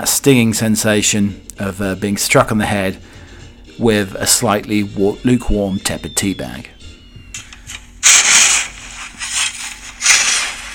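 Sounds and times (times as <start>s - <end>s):
speech: 0.0s - 3.2s, 3.8s - 6.8s
metal shovel scraping through snow: 8.0s - 10.7s.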